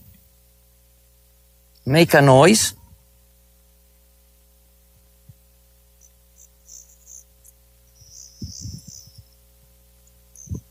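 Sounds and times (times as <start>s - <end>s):
low hum: 0.0s - 10.7s
speech: 1.8s - 2.8s
crickets chirping at nightfall: 5.7s - 10.7s.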